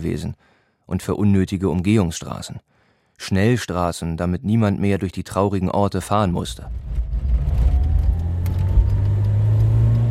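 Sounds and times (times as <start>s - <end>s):
speech: 0.0s - 7.6s
car engine humming as the car drives off toward Weißwasser: 6.6s - 10.1s.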